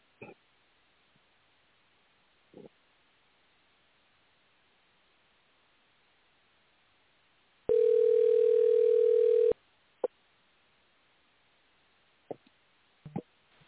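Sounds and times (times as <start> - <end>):
telephone dial tone while placing a call: 7.7 - 9.6.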